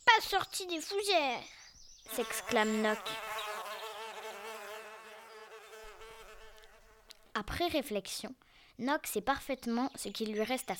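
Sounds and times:
speech: 0.2s - 3.3s, 7.4s - 10.7s
insect wings buzzing: 2.1s - 7.4s.

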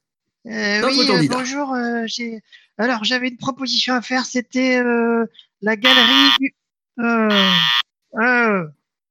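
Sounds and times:
speech: 0.4s - 8.8s
game-show wrong-answer buzzer in a radio phone-in game: 5.9s - 6.4s, 7.3s - 7.8s.

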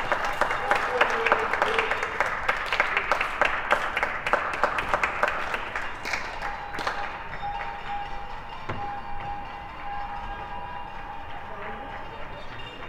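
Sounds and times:
people clapping from balconies and windows along a city street: 0.0s - 12.8s
voices: 0.0s - 12.8s.

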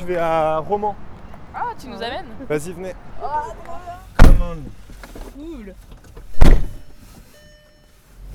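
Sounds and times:
speech: 0.0s - 6.0s
car door slamming shut as people get into a car: 4.1s - 5.3s, 5.9s - 7.0s
thump: 4.2s - 4.6s, 6.2s - 6.9s.

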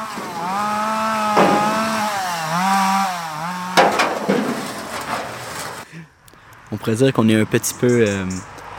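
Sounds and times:
chainsaw cutting wood: 0.0s - 5.9s
speech: 6.7s - 8.6s.

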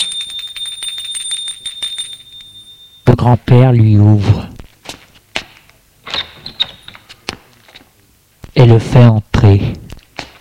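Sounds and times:
shrill rattling electric doorbell ringing: 0.0s - 3.1s
speech: 3.2s - 4.5s, 8.6s - 9.8s.

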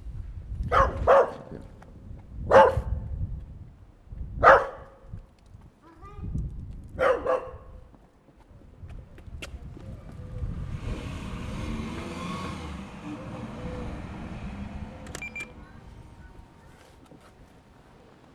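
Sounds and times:
dog barking: 0.7s - 1.6s, 2.5s - 3.0s, 4.4s - 5.0s, 7.0s - 7.8s
low rumbling background: 9.5s - 16.8s.

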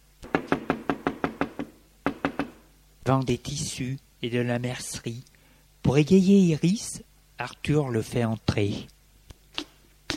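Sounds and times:
knuckles knocking on a house door: 0.3s - 2.6s
speech: 3.1s - 9.0s.

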